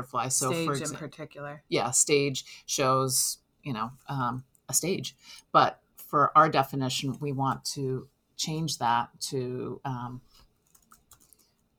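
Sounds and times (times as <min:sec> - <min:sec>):
speech: 0:00.0 - 0:10.3
typing on a computer keyboard: 0:10.6 - 0:11.7.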